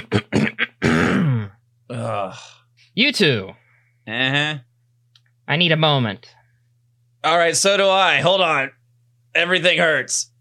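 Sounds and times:
person imitating throat clearing with gruff guttural bursts: 0.0s - 2.6s
speech: 2.3s - 4.7s, 5.5s - 6.4s, 7.2s - 10.3s.

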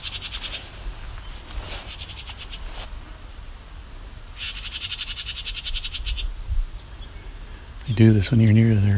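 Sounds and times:
house wren scolding call: 0.0s - 0.7s, 1.7s - 2.8s, 4.3s - 6.4s
low hiss: 0.0s - 8.9s
speech: 7.9s - 8.9s.

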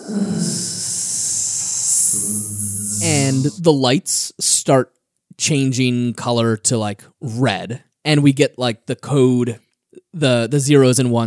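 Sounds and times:
brief low vocal sound: 0.0s - 3.6s
voice imitating a growing hiss: 0.0s - 3.6s
speech: 0.1s - 0.8s, 2.2s - 11.2s.

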